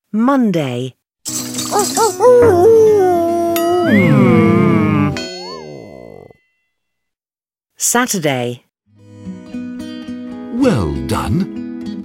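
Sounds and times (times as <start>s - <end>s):
speech: 0.1s - 3.2s, 3.8s - 4.6s, 7.8s - 8.6s, 10.6s - 11.6s
wolf yipping calls: 1.6s - 4.3s
long wavering wolf howl: 1.7s - 6.3s.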